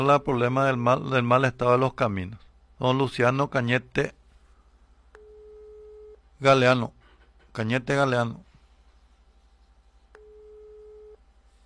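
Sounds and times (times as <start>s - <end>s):
speech: 0.0s - 4.2s, 6.4s - 7.0s, 7.6s - 8.5s
faint low hum: 0.0s - 11.6s
telephone busy signal tone: 5.2s - 6.2s, 10.2s - 11.2s.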